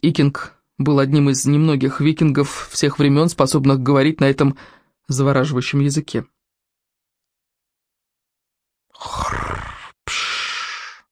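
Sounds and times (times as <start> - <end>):
speech: 0.0 - 6.4
dragon snoring: 9.0 - 11.1.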